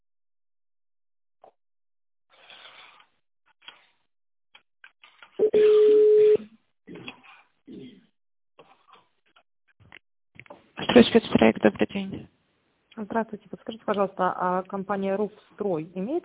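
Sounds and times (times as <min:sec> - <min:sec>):
telephone ringing tone on a company's phone line while a call is transferred: 0:05.4 - 0:06.4
speech: 0:11.1 - 0:12.3, 0:13.2 - 0:16.2.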